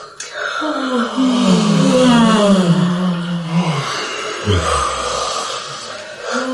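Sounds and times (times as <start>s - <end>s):
person yawning during a seated relaxation exercise: 1.0s - 6.5s.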